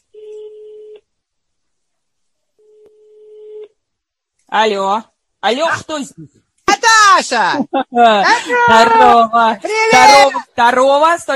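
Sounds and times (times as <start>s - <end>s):
telephone ringback tones while a call is being placed: 0.1s - 1.0s, 2.6s - 3.7s
speech: 4.5s - 6.4s, 7.1s - 11.3s.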